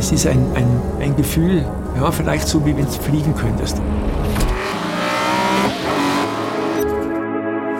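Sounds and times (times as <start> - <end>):
speech: 0.1 - 4.1
rally car engine revving through gear changes: 3.9 - 7.0.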